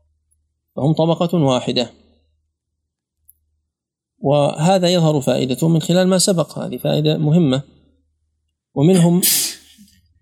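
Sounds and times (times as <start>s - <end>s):
speech: 0.8s - 2.0s, 4.2s - 7.8s, 8.8s - 9.6s
sneeze: 9.0s - 9.8s.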